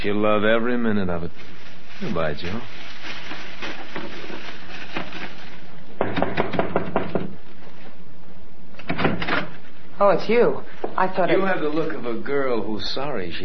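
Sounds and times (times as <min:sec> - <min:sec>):
speech: 0:00.0 - 0:03.2, 0:10.0 - 0:13.4
knocking on a door: 0:06.0 - 0:07.4.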